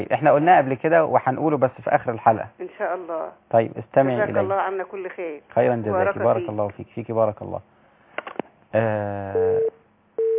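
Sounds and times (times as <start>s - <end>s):
speech: 0.0s - 9.8s
buzzy harmonic-rich telephone line tone as a call is connected: 9.4s - 10.3s.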